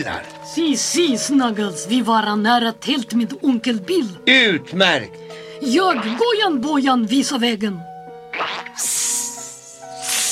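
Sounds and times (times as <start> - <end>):
speech: 0.0 - 9.0
snake hissing in a jungle: 8.3 - 10.3.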